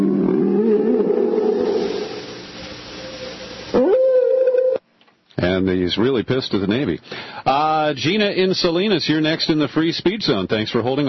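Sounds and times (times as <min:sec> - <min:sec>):
whale call: 0:00.0 - 0:04.8
speech: 0:05.6 - 0:11.0.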